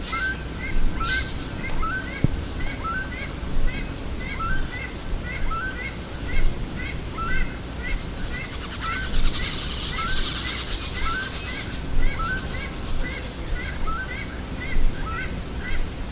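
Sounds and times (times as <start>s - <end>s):
bird chirping: 0.0s - 16.1s
low background rumble: 0.0s - 16.1s.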